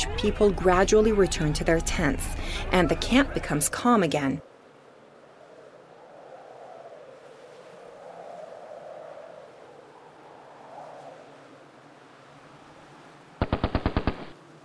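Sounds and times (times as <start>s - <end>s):
speech: 0.2s - 4.5s
sharp gunshots at night in Mogadishu: 13.4s - 14.4s.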